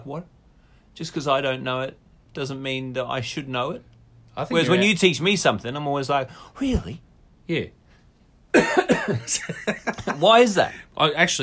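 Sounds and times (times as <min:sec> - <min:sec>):
speech: 0:00.0 - 0:00.4, 0:01.0 - 0:07.8, 0:08.5 - 0:11.4
person coughing: 0:08.5 - 0:09.6.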